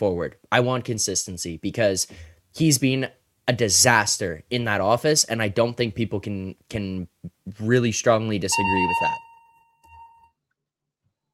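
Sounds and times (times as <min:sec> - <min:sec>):
speech: 0:00.0 - 0:09.2
fire alarm harsh electronic beep: 0:08.5 - 0:10.3.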